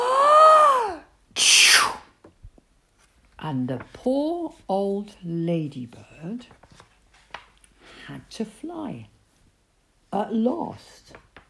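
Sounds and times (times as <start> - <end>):
person performing an exaggerated sneeze: 0.3 - 2.1
speech: 3.4 - 6.8, 8.1 - 9.1, 10.1 - 11.2.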